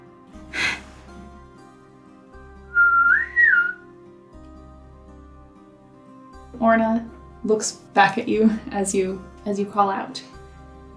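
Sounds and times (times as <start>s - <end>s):
brief breathy rush: 0.4s - 1.5s
short human whistle: 2.7s - 3.8s
speech: 6.6s - 10.4s.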